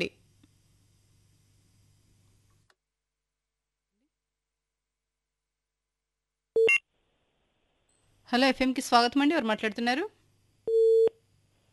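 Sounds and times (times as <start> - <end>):
speech: 8.3 - 10.2
telephone busy tone after a call has disconnected: 10.7 - 11.1.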